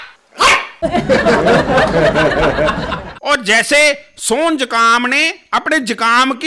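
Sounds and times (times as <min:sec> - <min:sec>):
small dog yapping with high-pitched yips: 0:00.0 - 0:00.8
speech: 0:00.8 - 0:02.8, 0:03.4 - 0:06.4
laughter: 0:00.8 - 0:03.2.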